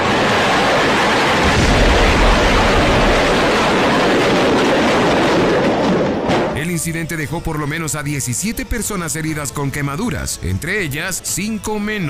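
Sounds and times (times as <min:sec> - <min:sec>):
rockets, firecrackers and fireworks exploding out of control at a festival: 0:00.0 - 0:06.6
speech: 0:06.8 - 0:12.0.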